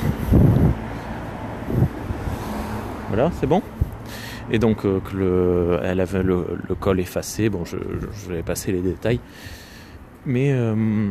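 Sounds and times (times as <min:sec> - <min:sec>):
many cars passing by in the evening: 0:00.0 - 0:11.1
speech: 0:03.2 - 0:03.8, 0:04.5 - 0:09.6, 0:10.2 - 0:11.1.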